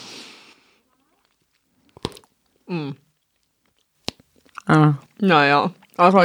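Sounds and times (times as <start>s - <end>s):
breathy push of air: 0.0s - 0.8s
gum chewing: 1.0s - 6.0s
gum bubble pop: 1.9s - 2.3s
speech: 2.7s - 3.0s, 4.7s - 6.2s.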